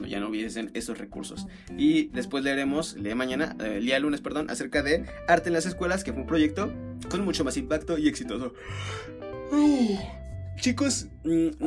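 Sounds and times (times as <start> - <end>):
speech: 0.1 - 11.6
drawn-out voiced yawn: 8.7 - 10.2.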